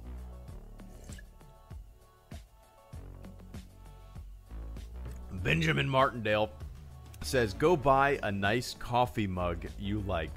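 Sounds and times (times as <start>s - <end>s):
faint steady music: 0.0s - 10.3s
person sipping water: 0.8s - 1.3s
speech: 5.4s - 6.6s, 7.2s - 10.3s.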